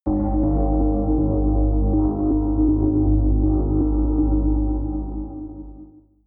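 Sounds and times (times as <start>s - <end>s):
synth rumble: 0.1s - 6.0s.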